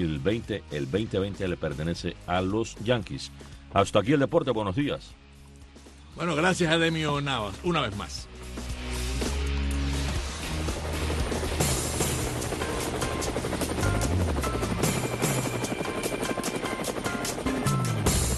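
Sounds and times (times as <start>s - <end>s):
speech: 0.0s - 5.2s, 6.2s - 8.7s
helicopter engine roar: 8.4s - 18.3s
helicopter rotor blades thumping: 10.2s - 18.3s.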